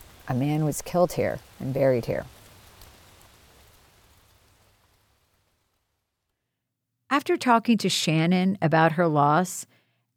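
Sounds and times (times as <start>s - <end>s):
light rain pattering on leaves and ground in woods: 0.0s - 6.5s
speech: 0.3s - 2.4s, 7.2s - 10.1s.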